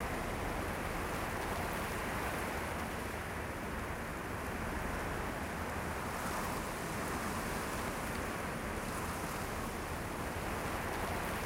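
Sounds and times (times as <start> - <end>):
desert wind: 0.0 - 11.4.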